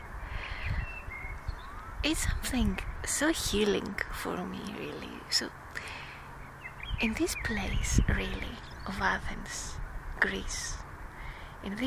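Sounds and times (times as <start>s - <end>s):
birds chirping and whistling outdoors: 0.2s - 3.0s, 5.9s - 9.3s
speech: 2.0s - 6.0s, 7.0s - 10.8s, 11.6s - 11.8s.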